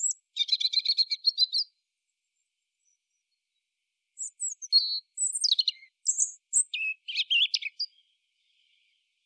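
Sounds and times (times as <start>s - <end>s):
European robin Erithacus rubecula singing: 0.0s - 1.8s, 4.2s - 9.2s.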